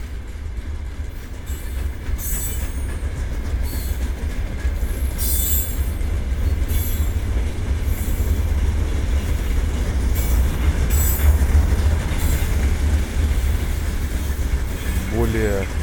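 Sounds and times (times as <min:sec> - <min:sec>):
train passing along railway: 0:00.0 - 0:15.8
train wheels squealing: 0:01.5 - 0:04.1, 0:04.8 - 0:08.5, 0:09.2 - 0:15.3.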